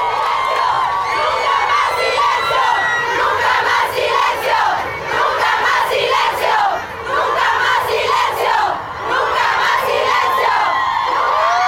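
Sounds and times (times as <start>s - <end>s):
crowd of women chanting and shouting at a march: 0.1s - 11.5s.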